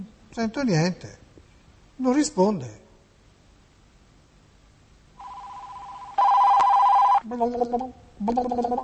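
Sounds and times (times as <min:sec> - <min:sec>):
speech: 0:00.3 - 0:01.2, 0:02.0 - 0:02.8, 0:07.4 - 0:08.8
telephone signal tones during a call transfer: 0:05.2 - 0:07.2.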